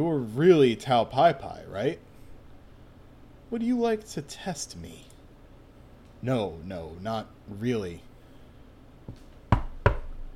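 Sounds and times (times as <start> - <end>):
speech: 0.0 - 2.1, 3.5 - 5.1, 6.2 - 8.1
Foley firm knocks on a door: 9.5 - 10.3.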